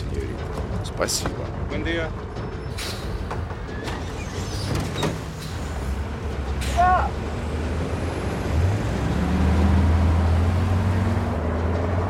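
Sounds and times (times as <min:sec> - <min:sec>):
speech: 0:01.0 - 0:02.2
bus engine rumble at a military checkpoint: 0:02.3 - 0:12.0
bus air brake hissing squeal: 0:02.7 - 0:03.3.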